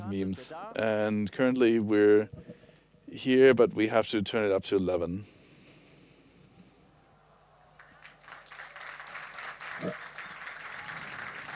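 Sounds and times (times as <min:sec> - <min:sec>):
speech: 0:00.1 - 0:02.5, 0:03.1 - 0:05.3
audience applause: 0:07.7 - 0:11.5.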